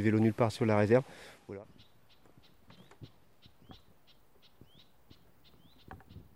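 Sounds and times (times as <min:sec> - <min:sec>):
speech: 0:00.0 - 0:01.8
young birds calling in a nature reserve: 0:00.0 - 0:06.3.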